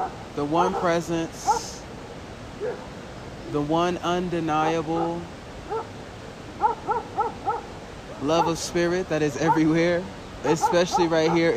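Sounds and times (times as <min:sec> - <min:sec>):
speech: 0:00.0 - 0:01.6, 0:02.6 - 0:05.4, 0:08.2 - 0:11.5
dogs yelping: 0:00.0 - 0:01.8, 0:02.6 - 0:02.9, 0:04.9 - 0:06.0, 0:06.6 - 0:08.6, 0:09.4 - 0:09.8, 0:10.5 - 0:11.5.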